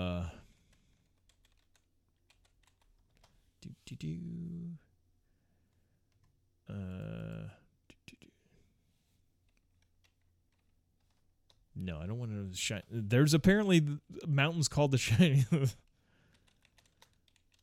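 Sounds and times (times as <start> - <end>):
typing on a computer keyboard: 0.6 - 3.4, 9.5 - 11.6, 16.3 - 17.6
speech: 3.9 - 4.9, 11.8 - 15.8.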